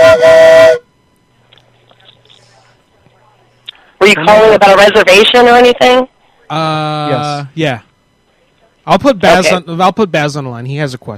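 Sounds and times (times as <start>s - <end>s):
train steam whistle: 0.0s - 0.8s
speech: 4.1s - 7.9s, 8.8s - 11.1s.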